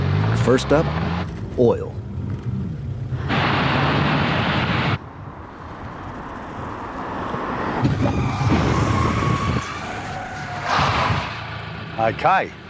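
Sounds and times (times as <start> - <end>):
car driving at speed: 0.0 - 12.6
road noise: 0.0 - 12.6
speech: 0.4 - 2.0, 12.0 - 12.6
faint tire squeal of car braking on oily surface: 5.5 - 11.6.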